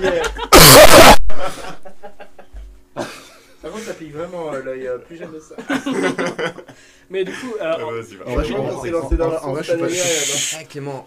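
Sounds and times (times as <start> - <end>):
speech: 0.0 - 0.4, 3.9 - 11.0
laughter: 0.0 - 3.5, 5.6 - 7.5
quieter breathy coughing: 0.5 - 1.2, 3.0 - 3.4
loud harsh cough against the microphone: 0.5 - 1.4, 3.0 - 3.3.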